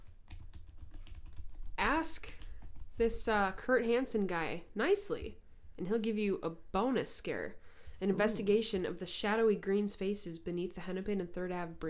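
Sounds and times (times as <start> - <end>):
typing on a computer keyboard: 0.0 - 3.2
speech: 1.9 - 2.4, 3.0 - 11.8.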